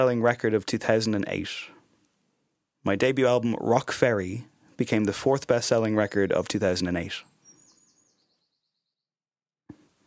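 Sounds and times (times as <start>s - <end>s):
speech: 0.0s - 1.8s, 2.8s - 7.3s
faint background bird song with rapid high chirps: 6.0s - 9.4s.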